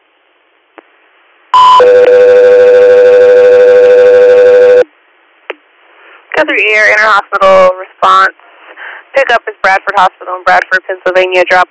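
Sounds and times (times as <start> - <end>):
loud two-tone radio dispatch alert: 1.6 - 4.8
speech: 1.8 - 2.2, 6.6 - 8.4, 9.2 - 11.6.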